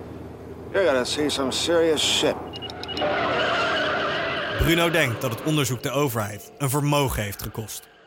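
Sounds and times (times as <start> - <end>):
speech: 0.7 - 3.7, 4.6 - 8.0
car accelerating hard with engine roar: 2.3 - 7.0
car tyres squealing while skidding: 2.6 - 6.0.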